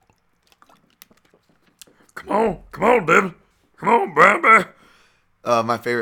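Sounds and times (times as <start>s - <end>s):
person sipping water: 0.0s - 2.3s
speech: 2.2s - 4.8s, 5.4s - 6.0s.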